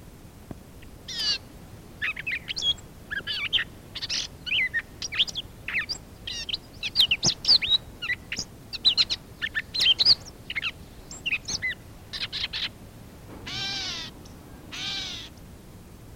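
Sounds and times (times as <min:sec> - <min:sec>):
bird chirps: 0:02.0 - 0:15.5
bird hooting calls: 0:02.0 - 0:16.0.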